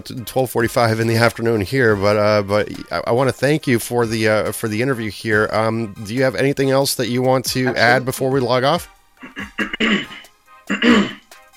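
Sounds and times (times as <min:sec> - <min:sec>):
speech: 0:00.0 - 0:11.1
man clearing throat during an interview: 0:09.2 - 0:11.3.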